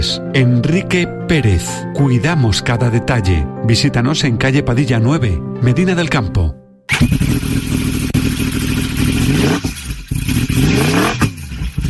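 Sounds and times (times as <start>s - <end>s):
speech: 0.4s - 8.1s
motorcycle engine revving hard between gear changes: 6.9s - 11.8s.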